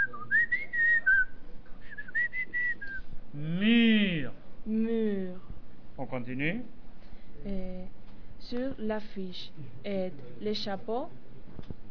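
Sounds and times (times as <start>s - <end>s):
person whistling a wavering tune through pursed lips: 0.0s - 1.3s, 1.9s - 3.0s
soft hum: 0.0s - 11.9s
speech: 6.2s - 6.8s, 7.4s - 11.7s.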